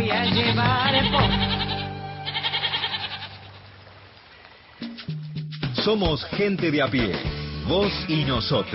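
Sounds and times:
goats bleating: 0.1 - 3.7
speech: 5.9 - 8.7.

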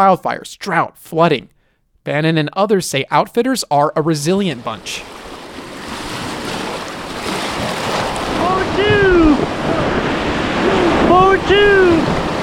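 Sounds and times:
speech: 0.0 - 5.2
churning whitewater as a raft runs a river rapid: 4.4 - 12.4.

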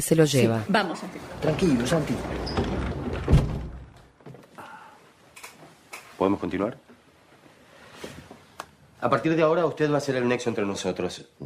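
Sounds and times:
speech: 0.0 - 2.6, 6.2 - 6.9, 9.0 - 11.4
quiet room noise: 0.0 - 11.4
door swinging shut with a solid thud: 1.4 - 4.1.

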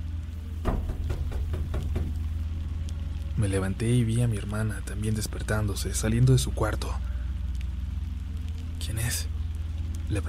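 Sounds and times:
low steady hum: 0.0 - 10.2
knocking on a door in the middle of the night: 0.6 - 2.3
speech: 3.4 - 7.1.

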